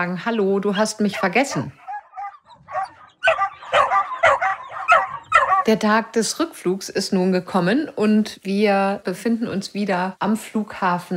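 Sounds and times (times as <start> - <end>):
speech: 0.0 - 1.8, 5.7 - 11.1
dog barking excitedly: 0.7 - 5.7.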